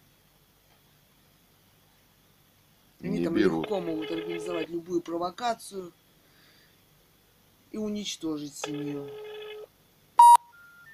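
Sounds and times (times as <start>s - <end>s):
speech: 3.0s - 6.0s, 7.7s - 9.3s
touch-tone beeps of a phone number being dialed: 10.2s - 10.5s.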